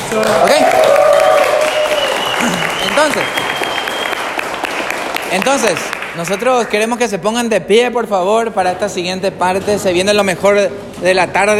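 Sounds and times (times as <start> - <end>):
audience applause of many hands clapping: 0.0 - 6.9
speech: 0.1 - 0.9, 3.0 - 3.6, 5.3 - 11.5.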